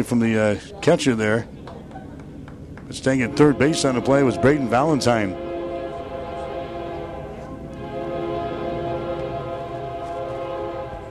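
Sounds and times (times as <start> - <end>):
speech: 0.0 - 1.6, 2.9 - 5.4
rumble of a passing train: 0.0 - 11.1
train horn blaring: 3.0 - 11.1.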